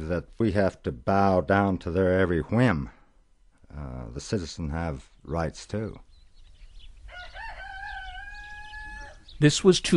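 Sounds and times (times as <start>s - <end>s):
speech: 0.1s - 3.0s, 3.7s - 6.1s, 9.4s - 9.9s
rooster crowing outdoors on a quiet ranch: 7.1s - 9.3s.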